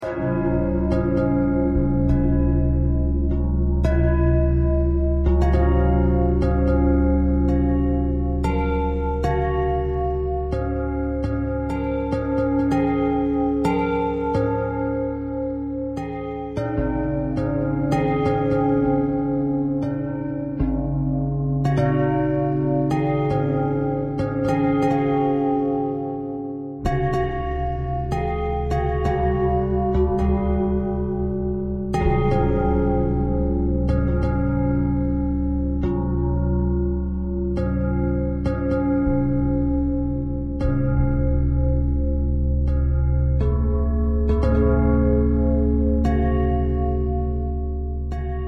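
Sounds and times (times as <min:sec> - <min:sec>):
bell: 0:00.0 - 0:48.4.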